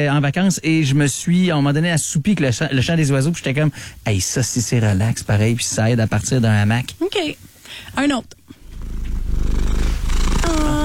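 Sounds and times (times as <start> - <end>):
speech: 0.0 - 8.4
cat purring: 8.5 - 10.8.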